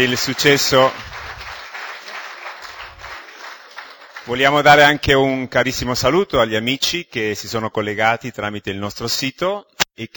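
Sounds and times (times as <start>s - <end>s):
speech: 0.0s - 1.2s, 4.3s - 10.1s
audience applause at a live book event: 0.0s - 4.7s.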